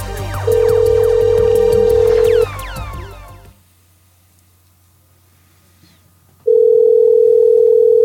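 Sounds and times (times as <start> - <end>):
steady telephone dial tone: 0.5 - 2.5, 6.5 - 8.0.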